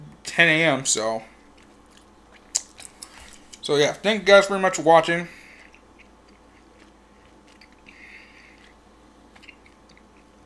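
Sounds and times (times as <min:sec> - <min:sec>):
steady low hum: 0:00.0 - 0:10.4
speech: 0:00.4 - 0:01.3, 0:03.7 - 0:05.4
chewing gum: 0:01.4 - 0:03.6, 0:05.4 - 0:10.4.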